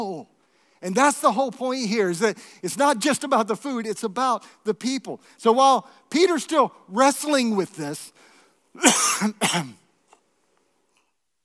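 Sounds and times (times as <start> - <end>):
speech: 0.0 - 9.8
person coughing from a tickle in the throat: 8.8 - 9.9.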